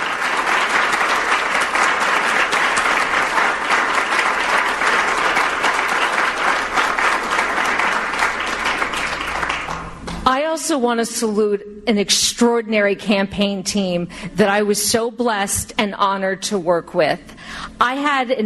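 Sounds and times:
loud applause from a large audience: 0.0 - 10.2
speech: 10.7 - 18.4.

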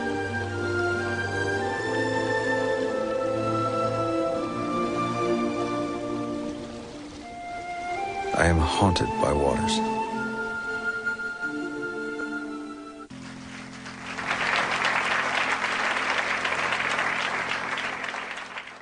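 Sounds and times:
soft instrumental music: 0.0 - 16.0
speech: 8.4 - 10.0
large audience applauding: 13.1 - 18.7.

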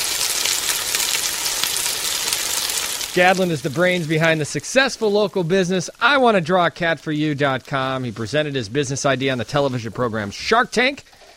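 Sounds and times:
frying sizzle: 0.0 - 11.3
speech: 3.2 - 11.2.

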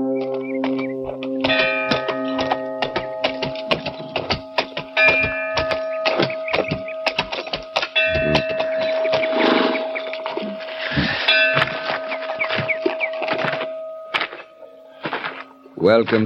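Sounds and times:
sharp clattering knocks: 0.2 - 10.3
bells ringing to announce a stranger in the pass: 1.0 - 16.2
speech: 15.9 - 16.2.

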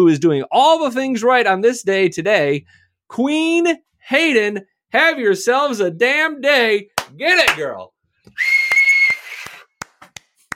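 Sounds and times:
speech: 0.0 - 8.6
whistled note: 8.3 - 9.7.

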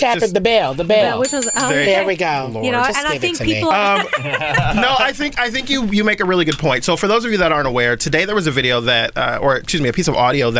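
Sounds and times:
speech: 0.0 - 10.5
small bell ringing: 1.2 - 2.4
people chuckling: 3.7 - 5.3.

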